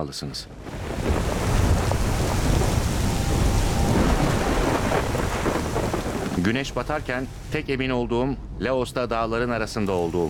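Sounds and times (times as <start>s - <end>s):
speech: 0.0s - 1.4s, 6.4s - 10.2s
thunder rumbling in the mountains of Laos: 0.5s - 7.6s
steady heavy rain in the mountains of Laos: 0.6s - 7.6s.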